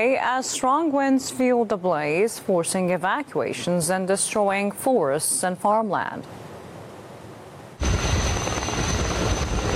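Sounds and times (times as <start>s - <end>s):
speech: 0.0s - 6.4s
firefighting helicopter rotor and engine roar with thin high whine: 7.8s - 9.7s.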